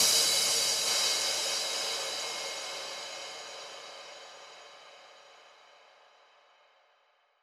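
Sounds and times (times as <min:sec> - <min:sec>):
drums and percussion in A-sharp minor: 0:00.0 - 0:05.2
crash cymbal: 0:00.0 - 0:06.6.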